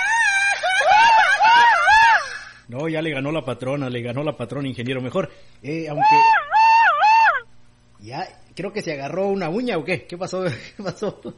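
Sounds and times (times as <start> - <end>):
person screaming high-pitched: 0.0 - 2.6, 5.9 - 7.5
speech: 2.7 - 6.4, 8.0 - 11.3.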